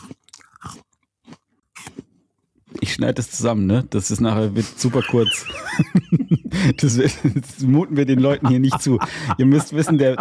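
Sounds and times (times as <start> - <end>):
person snacking, chewing and crunching food: 0.0 - 3.0
speech: 3.0 - 10.2
laughter: 4.6 - 10.2.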